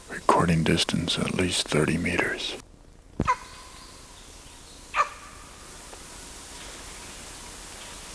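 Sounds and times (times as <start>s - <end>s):
faint hiss: 0.0s - 8.1s
speech: 0.4s - 2.6s
adult male animal barking: 3.2s - 3.8s, 4.9s - 5.6s.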